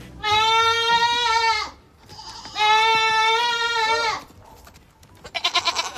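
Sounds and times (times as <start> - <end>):
goat bleating: 0.1 - 4.4, 5.2 - 5.9.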